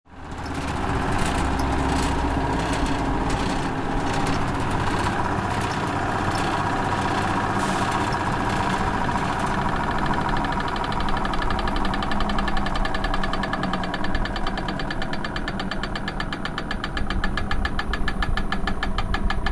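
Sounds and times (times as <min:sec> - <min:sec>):
generator starting up: 0:00.1 - 0:19.5.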